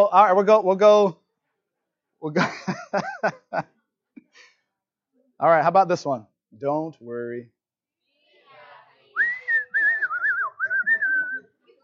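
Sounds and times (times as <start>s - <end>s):
speech: 0.0s - 1.2s, 2.2s - 3.8s, 5.4s - 7.6s
laughter: 2.4s - 3.7s
person whistling a short tune: 9.2s - 11.5s.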